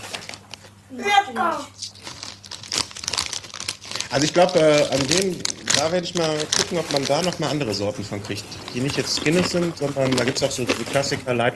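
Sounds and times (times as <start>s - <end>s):
child crinkling plastic snack bags: 0.0s - 0.7s, 1.8s - 11.4s
brief high child's voice: 0.9s - 1.9s
speech: 0.9s - 1.9s, 4.1s - 11.5s.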